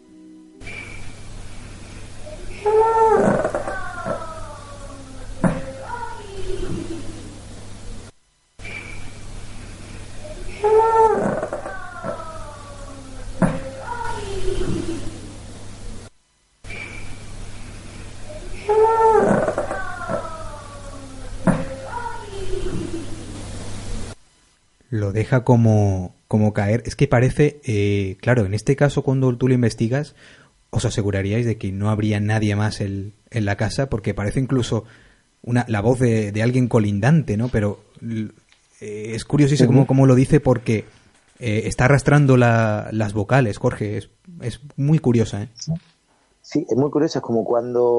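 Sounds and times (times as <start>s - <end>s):
steady hiss of old noisy recording: 0.0s - 47.9s
small dog growling: 2.5s - 4.1s, 10.5s - 11.7s, 18.6s - 20.2s
speech: 25.0s - 47.9s.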